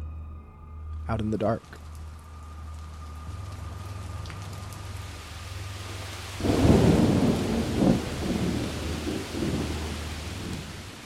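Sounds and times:
steady rain hissing: 0:00.9 - 0:11.0
speech: 0:01.1 - 0:01.8
deep thunder rolling: 0:02.4 - 0:11.0.

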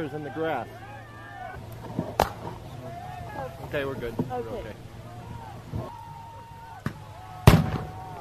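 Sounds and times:
speech: 0:00.0 - 0:00.9, 0:03.4 - 0:04.9
steady low rumble: 0:00.0 - 0:08.1
concussion grenade explosions: 0:07.4 - 0:08.1.

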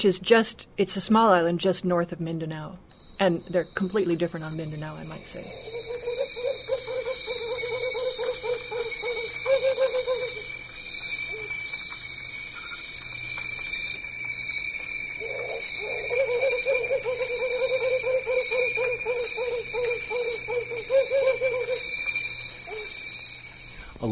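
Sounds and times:
speech: 0:00.0 - 0:05.8
constant high-pitched insect drone: 0:02.9 - 0:24.0
Camiguin hawk owl giving rapid pulsing hoots: 0:03.0 - 0:10.6, 0:11.2 - 0:11.6, 0:15.2 - 0:24.0.

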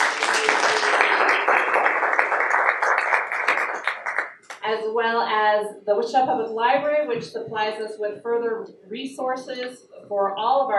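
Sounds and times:
crowd clapping: 0:00.0 - 0:04.6
speech: 0:04.7 - 0:10.7.

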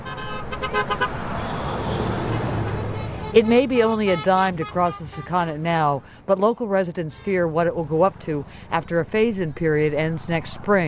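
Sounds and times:
car horn honks from motorists crossing a river bridge: 0:00.0 - 0:05.6
road traffic noise on a river bridge: 0:00.0 - 0:10.8
speech: 0:03.4 - 0:10.8.

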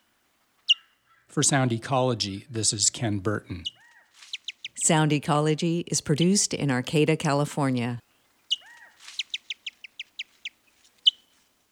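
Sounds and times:
speech: 0:01.3 - 0:03.9, 0:04.8 - 0:08.0
white-tailed kite calling with whistles, slurs and chirps: 0:08.5 - 0:11.4.

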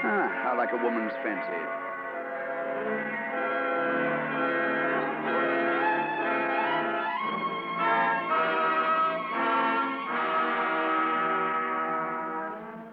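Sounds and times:
church bells ringing: 0:00.0 - 0:12.9
speech: 0:00.5 - 0:01.9.

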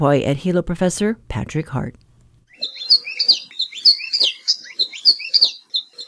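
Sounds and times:
speech: 0:00.0 - 0:02.0
Maui creeper song, small insectivorous honeycreeper found only on Maui, Hawaii: 0:02.5 - 0:06.0.

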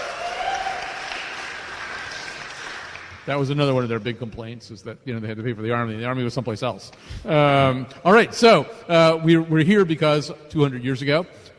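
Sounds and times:
audience applause: 0:00.0 - 0:03.6
speech: 0:03.2 - 0:11.5.

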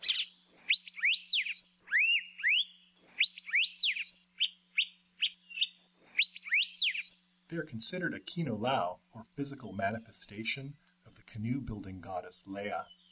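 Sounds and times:
elepaio bird whistles: 0:00.0 - 0:07.1
faint steady hum: 0:00.0 - 0:13.1
speech: 0:07.5 - 0:13.0.

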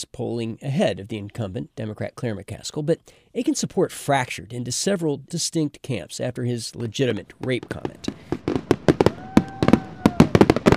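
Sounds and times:
speech: 0:00.0 - 0:08.6
fireworks exploding over a city at a public show: 0:07.3 - 0:10.7.

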